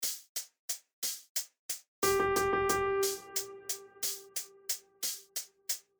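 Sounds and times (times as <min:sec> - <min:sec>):
sixteenth note and eighth note rhythm in triple feel: 0:02.0 - 0:05.3.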